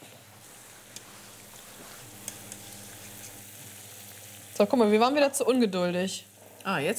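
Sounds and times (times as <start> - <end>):
food deep-frying in oil that is not yet hot enough: 0.0 - 6.9
oil crackling and popping: 0.4 - 4.6
speech: 4.6 - 6.9.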